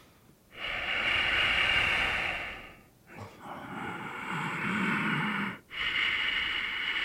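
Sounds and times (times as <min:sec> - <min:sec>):
deep breathing in and out as a relaxation exercise: 0:00.0 - 0:07.0.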